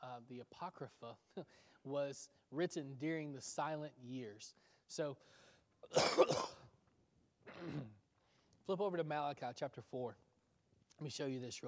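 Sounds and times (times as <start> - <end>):
speech: 0.2 - 6.7, 7.5 - 8.0, 8.7 - 10.2, 11.0 - 11.6
person coughing during a Bible lesson: 5.9 - 6.7, 7.5 - 8.0.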